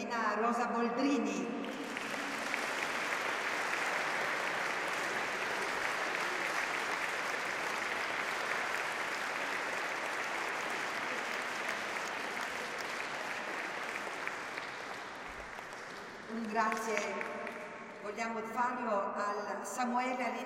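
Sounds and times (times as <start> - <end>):
speech: 0.4 - 1.8, 16.5 - 17.3, 18.1 - 20.4
large crowd audience applause for oboe player: 1.6 - 17.8.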